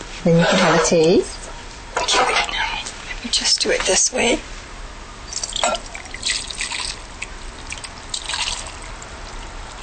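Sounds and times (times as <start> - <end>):
speech: 0.2 - 1.4, 2.1 - 2.3, 3.3 - 4.6
light drips and trickling of broth: 5.3 - 9.8
hot long-rice broth splashing into a pot: 5.4 - 9.8.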